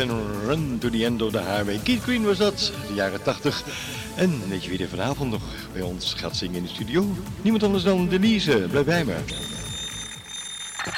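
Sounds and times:
speech: 0:00.0 - 0:09.7
shrill electronic alarm clock ringing: 0:09.2 - 0:10.9.

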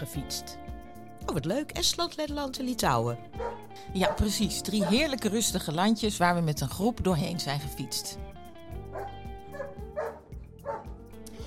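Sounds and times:
speech: 0:00.0 - 0:00.6, 0:01.3 - 0:08.4
dog barking: 0:03.4 - 0:05.1, 0:08.9 - 0:10.9.

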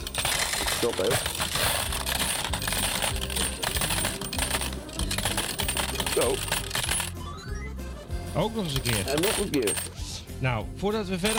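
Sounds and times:
coins dropping into a machine: 0:00.0 - 0:07.2, 0:08.6 - 0:10.0
speech: 0:00.8 - 0:01.5, 0:06.2 - 0:06.6, 0:08.4 - 0:11.3.

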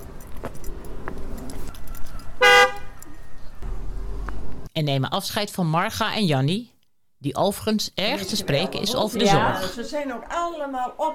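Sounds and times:
passing traffic rumble: 0:00.0 - 0:04.7
car horn honking as car passes: 0:02.4 - 0:03.0
speech: 0:04.8 - 0:11.1.

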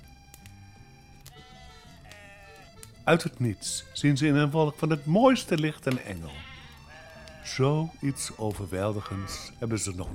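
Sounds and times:
sheep bleating in an open field near a stable: 0:01.3 - 0:02.9, 0:06.2 - 0:09.8
sharp clicks: 0:02.0 - 0:03.0, 0:05.4 - 0:07.5
speech: 0:03.1 - 0:06.5, 0:07.5 - 0:10.1.

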